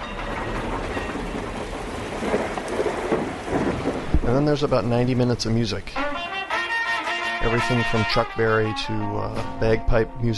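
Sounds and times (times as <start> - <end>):
thunder rumbling: 0.0 - 6.2
dense rainfall: 0.0 - 6.6
speech: 4.3 - 6.2, 7.4 - 10.3.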